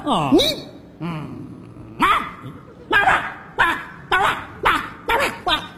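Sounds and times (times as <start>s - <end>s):
speech: 0.0s - 1.5s
dog barking: 2.0s - 5.4s.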